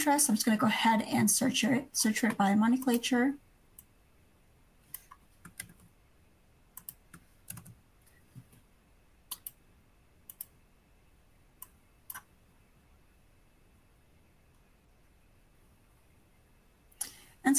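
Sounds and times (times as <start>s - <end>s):
speech: 0.0s - 3.4s
typing on a computer keyboard: 4.9s - 5.9s, 6.8s - 7.8s, 9.3s - 9.6s.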